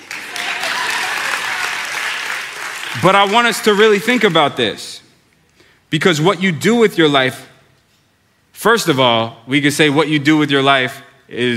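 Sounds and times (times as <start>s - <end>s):
audience clapping once in unison on request: 0.0s - 4.6s
speech: 3.0s - 4.9s, 5.9s - 7.5s, 8.6s - 11.5s.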